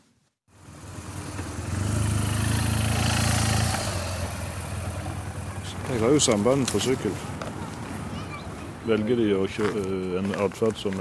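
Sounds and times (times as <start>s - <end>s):
new police motorcycle engine of the traffic police in Sandnes: 0.5s - 7.5s
speech: 6.0s - 7.4s, 8.9s - 10.9s.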